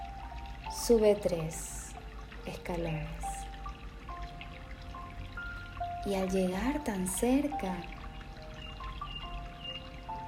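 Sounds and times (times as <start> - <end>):
clear-water fountain trickling: 0.0 - 10.2
speech: 0.8 - 1.8, 2.4 - 3.3, 6.0 - 8.0.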